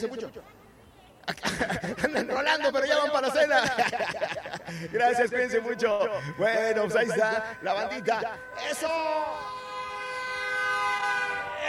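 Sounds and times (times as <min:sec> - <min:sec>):
speech: 0:00.0 - 0:00.6, 0:01.3 - 0:09.6
laughter: 0:01.2 - 0:05.4
vehicle horn honking in a long steady blast: 0:04.9 - 0:11.6.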